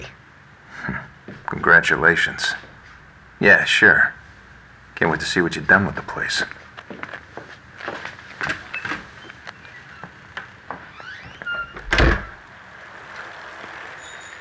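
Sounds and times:
footsteps on a paved lot: 1.2 - 1.5, 6.5 - 10.9
speech: 1.5 - 2.7, 3.4 - 4.2, 5.0 - 7.1.

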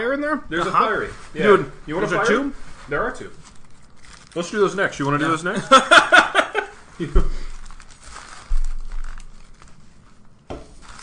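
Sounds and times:
speech: 0.1 - 3.5, 4.4 - 6.3, 7.0 - 7.4
taco wrappers crinkling and rustling: 0.6 - 11.0
laughter: 5.5 - 7.3.

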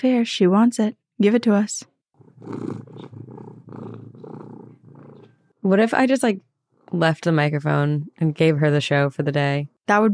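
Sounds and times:
speech: 0.0 - 3.1, 5.6 - 10.1
cat purring: 2.2 - 5.6.

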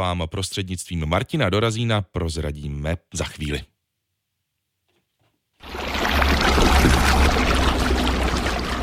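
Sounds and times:
speech: 0.0 - 3.7
clear mountain spring-water stream flowing: 5.6 - 8.8.

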